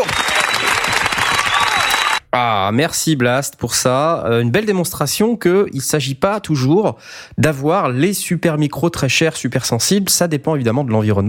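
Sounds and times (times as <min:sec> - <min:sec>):
dense applause of many hands clapping: 0:00.0 - 0:02.2
speech: 0:02.3 - 0:11.2.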